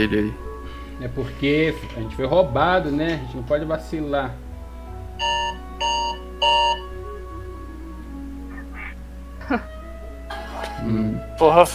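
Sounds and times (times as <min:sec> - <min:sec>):
speech: 0:00.0 - 0:00.4, 0:01.0 - 0:04.4, 0:09.5 - 0:09.7, 0:10.8 - 0:11.7
phone alarm buzzy electronic tones: 0:05.2 - 0:07.0.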